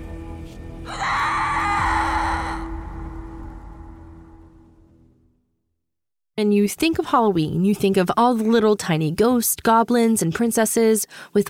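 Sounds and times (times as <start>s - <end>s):
shrill blood-curdling scream: 0.9s - 4.4s
low drone: 0.9s - 5.3s
low rumble: 1.0s - 5.4s
speech: 6.4s - 11.4s.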